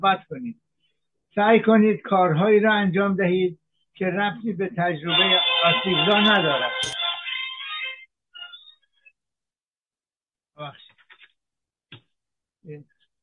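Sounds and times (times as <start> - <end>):
speech: 0.0 - 0.7, 1.3 - 7.0, 12.6 - 12.9
phone ringtone playing an anthem melody: 5.1 - 8.7.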